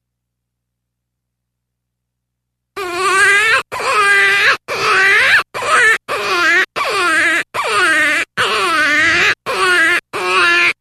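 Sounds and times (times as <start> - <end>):
jackrabbit distress screams: 2.8 - 10.7.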